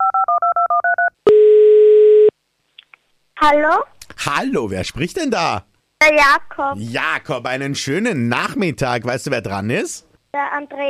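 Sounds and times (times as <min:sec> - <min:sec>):
long steady telephone tone: 0:00.0 - 0:02.3
speech: 0:03.4 - 0:10.8.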